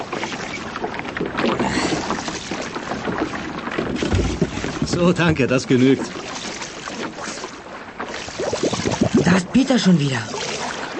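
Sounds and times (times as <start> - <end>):
water sloshing and splashing against a boat hull: 0.0 - 10.9
creaking and thumping of a diver climbing aboard: 1.0 - 6.1
speech: 5.0 - 6.2, 9.7 - 10.4.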